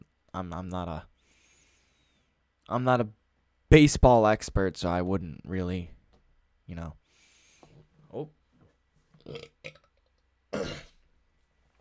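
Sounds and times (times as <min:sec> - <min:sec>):
speech: 0:00.4 - 0:01.1, 0:02.7 - 0:06.0, 0:06.7 - 0:07.0, 0:08.1 - 0:08.4, 0:09.3 - 0:09.8
loud throaty burp: 0:09.2 - 0:11.0.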